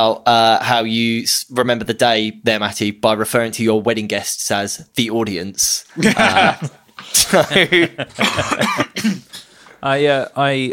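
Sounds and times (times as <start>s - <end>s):
speech: 0.0s - 10.7s
burst of laughter: 6.0s - 9.4s
man recovering from COVID coughing: 6.2s - 9.6s.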